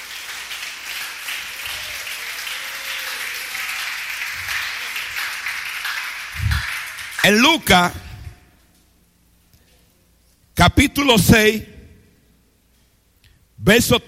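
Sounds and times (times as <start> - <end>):
audience applause: 0.0 - 7.6
speech: 7.2 - 8.0, 10.9 - 11.7, 13.6 - 14.0.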